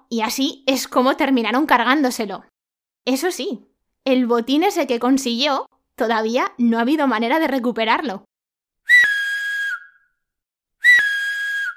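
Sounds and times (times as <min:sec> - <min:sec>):
speech: 0:00.1 - 0:08.3
loud sustained shrill whistles in a forest: 0:08.9 - 0:10.2, 0:10.8 - 0:11.7.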